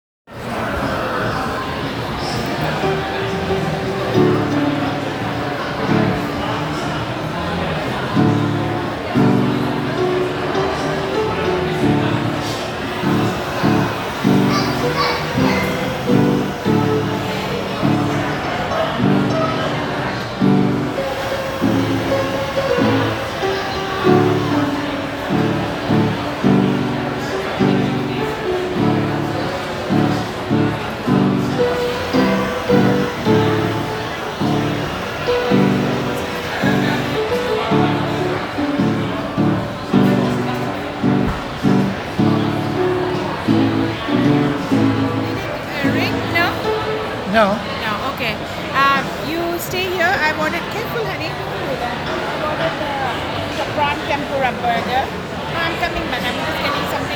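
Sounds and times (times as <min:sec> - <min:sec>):
out of tune piano playing at Mercado: 0:01.2 - 0:57.1.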